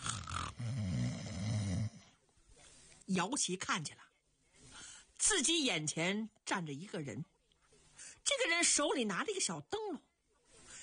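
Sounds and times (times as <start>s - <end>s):
man imitating snoring: 0.0s - 2.2s
speech: 3.1s - 4.1s, 5.2s - 7.3s, 8.2s - 10.1s.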